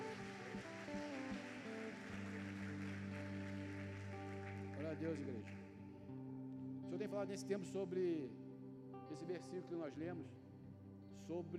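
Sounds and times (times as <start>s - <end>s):
church audience applauding: 0.0s - 6.1s
speech: 4.8s - 5.6s, 6.9s - 8.4s, 9.1s - 10.4s, 11.2s - 11.5s.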